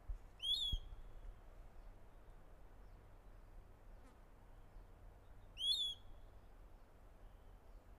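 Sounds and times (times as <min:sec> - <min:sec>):
piratic flycatcher giving short sharp slurred notes: 0:00.4 - 0:01.0, 0:05.6 - 0:06.2.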